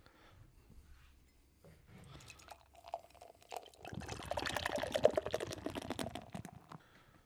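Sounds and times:
Peach Crumble Treat beer thick with pureed fruit pouring into a glass: 0:02.1 - 0:06.8.

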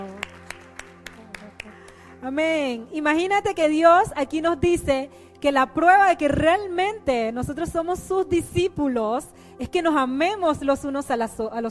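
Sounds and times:
audience clapping in rhythm: 0:00.0 - 0:02.2
speech: 0:02.2 - 0:11.6.

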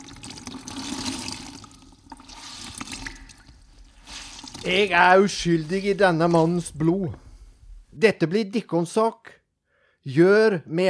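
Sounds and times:
water dripping: 0:00.0 - 0:07.3
man washing his hands in a basin of water: 0:00.7 - 0:06.6
speech: 0:04.6 - 0:07.2, 0:08.0 - 0:09.4, 0:10.0 - 0:10.8.

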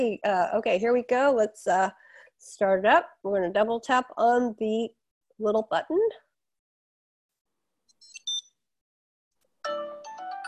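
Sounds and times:
speech: 0:00.0 - 0:06.2
tracker's short high-pitched electronic chirp sequence: 0:08.0 - 0:08.6
muted phone playing a loud harmonically rich ringtone melody: 0:09.6 - 0:10.4.

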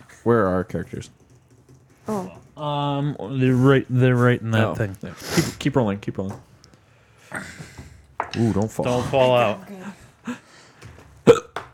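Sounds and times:
speech: 0:00.2 - 0:01.2, 0:02.1 - 0:06.5, 0:08.4 - 0:10.4
person hiccuping: 0:11.2 - 0:11.6.

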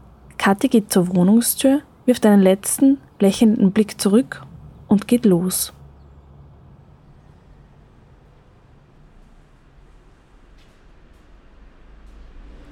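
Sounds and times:
car engine rumbling while racing into a hospital parking garage: 0:00.0 - 0:12.7
speech: 0:00.4 - 0:05.8.

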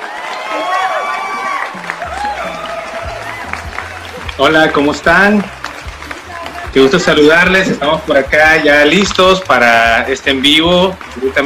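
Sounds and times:
scattered whoops and voices: 0:00.0 - 0:03.8
audience clapping and cheering: 0:00.0 - 0:11.4
speech: 0:04.4 - 0:05.6, 0:06.8 - 0:11.4.

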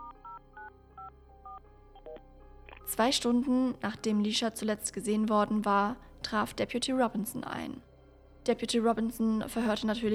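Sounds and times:
touch-tone keypad dual-tone beeps dialing a phone number: 0:00.0 - 0:02.2
faint low hum: 0:00.0 - 0:10.1
speech: 0:02.9 - 0:07.9, 0:08.5 - 0:10.1.

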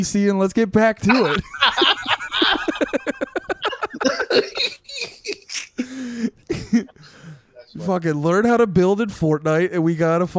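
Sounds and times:
speech: 0:00.0 - 0:03.2, 0:07.8 - 0:10.3
laughter: 0:01.0 - 0:07.2
person in an aggressive coughing fit: 0:01.1 - 0:01.4, 0:03.6 - 0:07.4.

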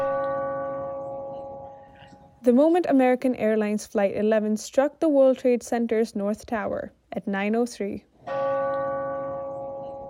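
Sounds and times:
large clock tower bell chiming: 0:00.0 - 0:02.4, 0:08.2 - 0:10.0
speech: 0:02.4 - 0:08.4.

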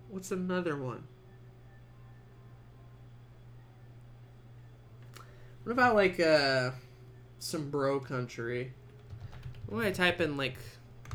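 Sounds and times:
speech: 0:00.1 - 0:01.2, 0:05.6 - 0:06.8, 0:07.4 - 0:08.8, 0:09.7 - 0:10.8
typing on a computer keyboard: 0:09.0 - 0:09.8.

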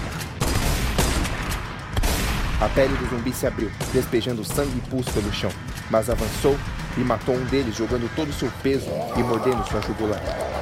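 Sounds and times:
shotgun blasts: 0:00.0 - 0:07.6
gunfire from two people shooting: 0:00.0 - 0:08.1
speech: 0:02.6 - 0:10.6.

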